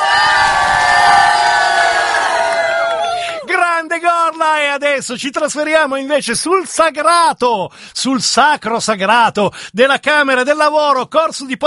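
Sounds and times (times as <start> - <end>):
crowd shouting and cheering a goodbye in Gorla Milan: 0.0 - 3.8
speech: 5.0 - 11.6.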